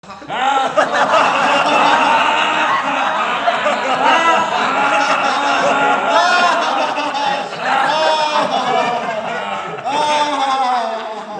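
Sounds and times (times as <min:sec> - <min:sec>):
loud laughter: 0:00.0 - 0:11.3.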